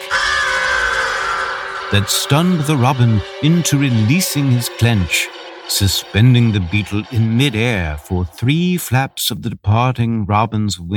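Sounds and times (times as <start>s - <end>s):
crow cawing: 0.0s - 4.1s, 5.3s - 5.7s
speech: 1.9s - 10.9s.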